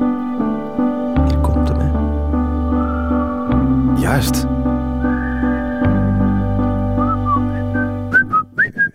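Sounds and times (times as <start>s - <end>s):
sustained instrumental backing: 0.0s - 8.6s
whistled melody in a song intro: 2.2s - 8.9s
speech: 4.2s - 4.5s.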